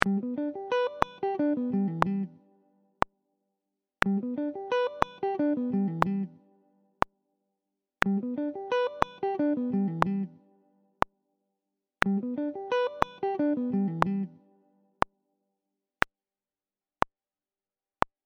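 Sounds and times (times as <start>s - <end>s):
slow guitar sweep picking in Gmaj6: 0.0s - 2.4s, 4.0s - 6.4s, 8.0s - 10.4s, 12.0s - 14.4s.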